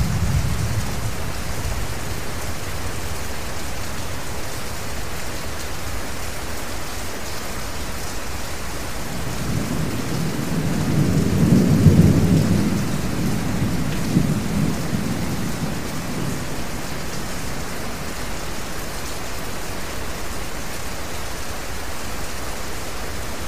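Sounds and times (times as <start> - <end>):
low rumble of thunder: 0.0 - 3.3, 9.1 - 18.4
steady rain: 0.0 - 23.4.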